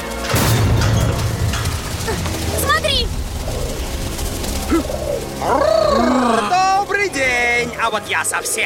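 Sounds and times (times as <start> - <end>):
steady rumble: 0.2 - 8.6
flock of pigeons cooing: 2.0 - 8.6
speech: 7.9 - 8.6.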